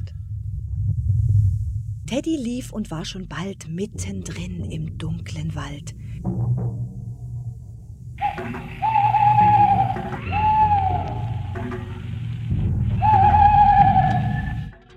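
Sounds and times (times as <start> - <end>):
low rumble of nighttime noise: 0.0 - 14.9
speech: 2.1 - 7.0
owl hooting: 8.2 - 12.0, 13.0 - 14.7.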